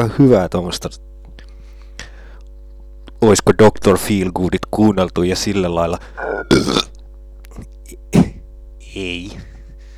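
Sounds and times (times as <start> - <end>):
speech: 0.0 - 1.1, 3.2 - 6.8, 9.0 - 9.5
low steady electrical hum: 0.0 - 9.9
short rough burps: 6.2 - 7.7.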